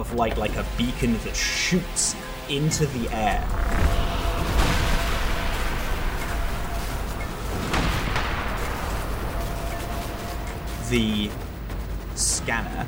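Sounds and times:
speech: 0.0s - 4.7s, 10.9s - 11.4s, 12.2s - 12.8s
dense steady rumble of crackling energy poured into the weapon: 0.4s - 12.8s
gun firing into the distance: 2.6s - 12.8s.

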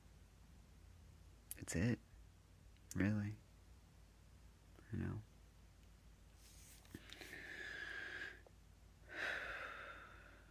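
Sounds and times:
speech: 1.6s - 2.1s, 2.9s - 3.4s, 4.9s - 5.3s
deep breathing: 6.9s - 10.4s.

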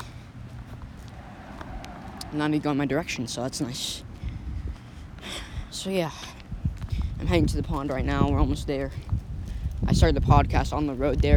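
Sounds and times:
cars rushing past on a road: 0.0s - 5.7s
speech: 2.3s - 4.1s, 5.8s - 6.4s, 7.2s - 9.1s, 9.9s - 11.3s.

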